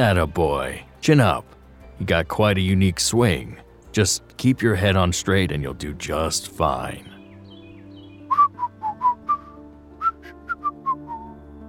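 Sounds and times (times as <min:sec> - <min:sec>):
speech: 0:00.0 - 0:07.1
person whistling a bright bouncy melody: 0:08.2 - 0:11.4.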